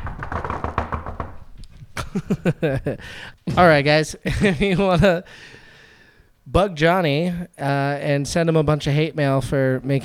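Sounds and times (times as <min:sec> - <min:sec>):
knocks on a wooden surface: 0:00.0 - 0:01.8
speech: 0:02.1 - 0:05.6, 0:06.5 - 0:10.0.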